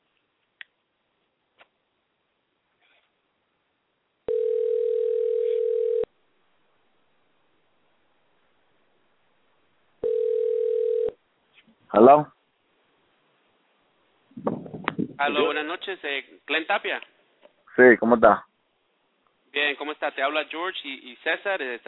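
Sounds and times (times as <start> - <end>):
telephone dial tone while a call is dialed: 4.3 - 6.1, 10.0 - 11.2
speech: 12.0 - 12.3, 15.2 - 17.1, 17.8 - 18.5, 19.5 - 21.8.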